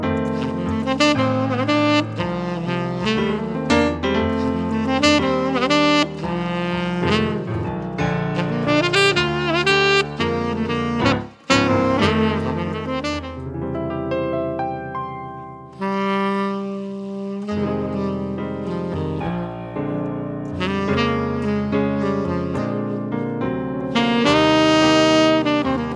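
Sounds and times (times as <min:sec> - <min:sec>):
saxophone duo playing: 0:00.2 - 0:14.5, 0:15.6 - 0:25.9.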